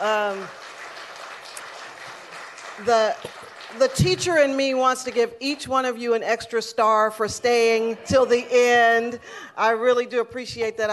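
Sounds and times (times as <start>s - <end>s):
audience applause at an evening Lunar New Year celebration: 0.0s - 4.5s
speech: 2.8s - 10.9s.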